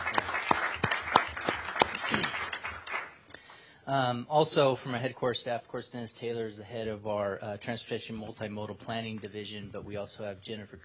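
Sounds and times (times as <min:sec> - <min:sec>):
audience applause: 0:00.0 - 0:03.2
speech: 0:03.9 - 0:10.8.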